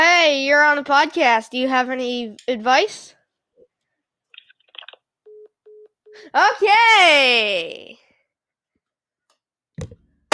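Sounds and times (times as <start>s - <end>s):
speech: 0.7s - 3.2s, 6.2s - 8.0s
mobile phone mid-pitched beeps: 5.3s - 6.2s.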